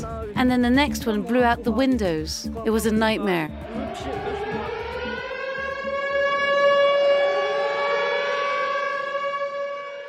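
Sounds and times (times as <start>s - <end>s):
speech: 0.4s - 4.3s
air raid siren wailing: 3.4s - 10.0s.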